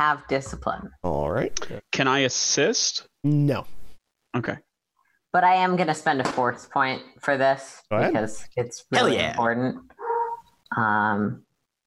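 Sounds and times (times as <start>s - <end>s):
speech: 0.0s - 3.8s, 4.4s - 4.7s, 5.3s - 10.0s, 10.7s - 11.4s
dog barking: 10.0s - 10.4s
dog whimpering: 10.0s - 10.5s.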